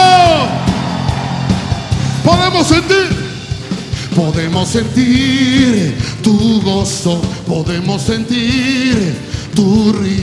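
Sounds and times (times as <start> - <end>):
audience member shouting for joy: 0.0 - 1.2
speech: 2.3 - 3.2, 4.2 - 10.2.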